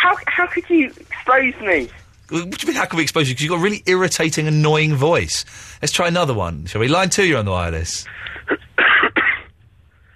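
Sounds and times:
speech: 0:00.1 - 0:08.6
harsh cough bursts over a telephone line: 0:08.3 - 0:09.6.

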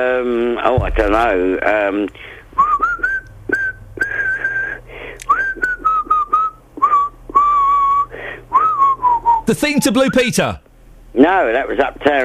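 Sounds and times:
speech: 0:00.0 - 0:02.4, 0:09.5 - 0:12.2
low steady hum: 0:00.0 - 0:12.2
tone-deaf person whistling a pop melody: 0:02.6 - 0:10.3.

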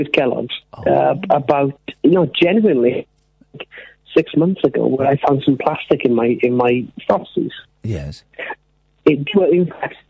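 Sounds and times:
speech: 0:00.0 - 0:03.1, 0:03.8 - 0:10.0
choppy distorted voice over a breaking phone line: 0:00.8 - 0:01.7, 0:04.8 - 0:05.6, 0:07.9 - 0:08.2.

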